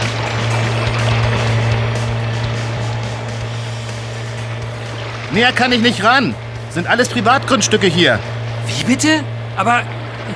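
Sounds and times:
racing motorboat engine droning: 0.0s - 10.3s
rushing water: 0.0s - 10.3s
speech: 5.3s - 10.3s.

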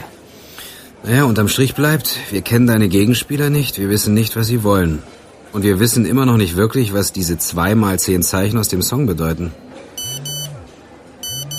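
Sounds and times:
speech: 1.0s - 9.7s
phone low vibrating buzz: 10.0s - 10.6s, 11.2s - 11.5s
phone text message alert beeps: 10.0s - 10.6s, 11.2s - 11.5s.

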